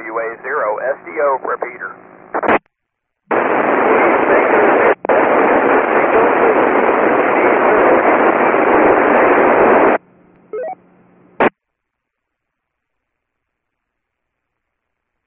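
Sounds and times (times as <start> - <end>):
loud steady hiss of radio static: 0.0 - 2.7, 3.3 - 10.0, 11.4 - 11.6
speech: 0.4 - 2.0.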